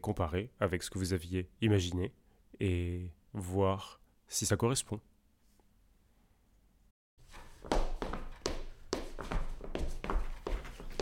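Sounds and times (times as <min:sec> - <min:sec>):
speech: 0:00.0 - 0:05.1
feet tapping and shuffling while dancing the Charleston: 0:07.2 - 0:11.0.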